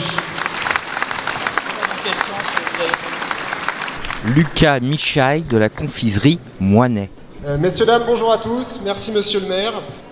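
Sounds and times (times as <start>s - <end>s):
audience applauding the Vichy pastille at festivities in Vichy: 0.0s - 5.3s
speech: 2.1s - 3.2s, 4.2s - 10.0s.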